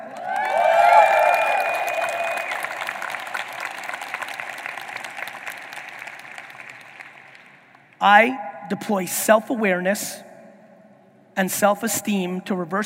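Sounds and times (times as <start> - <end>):
person whooping and yelling: 0.0 - 2.6
audience clapping and cheering: 0.0 - 8.0
speech: 8.0 - 10.3, 11.4 - 12.8.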